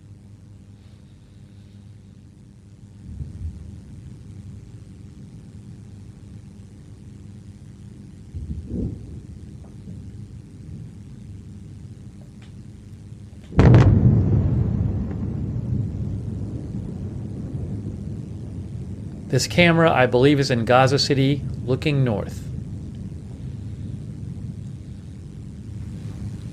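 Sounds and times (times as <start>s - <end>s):
steady low rumble: 1.3s - 26.5s
airstrike explosions in northern Gaza: 13.5s - 26.5s
speech: 19.4s - 22.5s.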